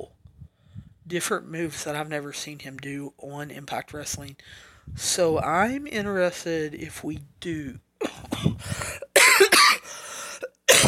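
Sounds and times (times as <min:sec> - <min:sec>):
speech: 0:01.1 - 0:08.9
throaty breathing: 0:04.4 - 0:05.0, 0:08.4 - 0:09.2, 0:09.8 - 0:10.6
throat clearing: 0:08.0 - 0:08.6
person coughing hard: 0:08.0 - 0:10.8.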